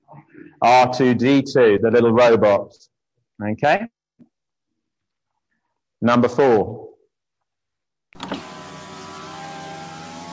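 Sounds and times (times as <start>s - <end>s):
speech: 0.6s - 4.0s, 6.0s - 6.8s
electric car window motor whirring: 8.2s - 10.3s.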